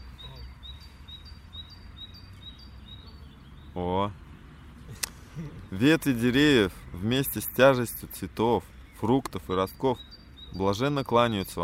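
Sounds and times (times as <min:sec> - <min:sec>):
small bird with bell-like chirps: 0:00.0 - 0:06.0, 0:08.6 - 0:11.6
speech: 0:03.8 - 0:04.2, 0:05.4 - 0:11.6.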